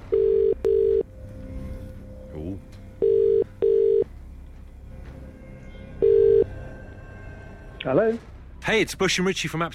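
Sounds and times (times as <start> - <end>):
telephone ringback tone on an outgoing call: 0.1 - 1.0, 3.0 - 4.1, 6.0 - 6.5
speech: 7.9 - 9.7.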